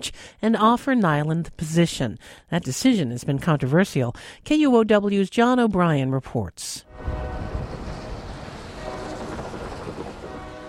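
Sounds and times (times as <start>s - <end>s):
speech: 0.0s - 7.3s
train passing at night near the school district headquarters in SoTo Seattle: 6.9s - 10.6s.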